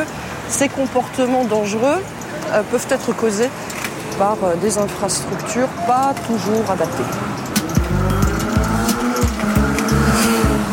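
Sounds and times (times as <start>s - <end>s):
speech: 0.5s - 7.4s
motorcycle roaring past at speed accelerating through gears: 7.8s - 10.7s.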